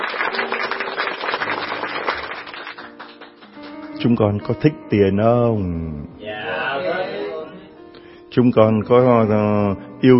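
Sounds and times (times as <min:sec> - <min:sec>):
children's warm round of applause from a large group: 0:00.0 - 0:04.0
speech: 0:04.0 - 0:06.7, 0:08.4 - 0:10.1.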